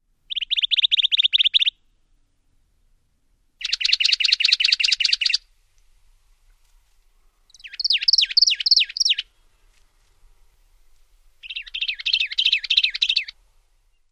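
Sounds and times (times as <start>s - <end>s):
Juniper Titmouse singing: 0.3s - 1.7s, 3.6s - 5.4s, 7.5s - 9.3s, 11.4s - 13.4s.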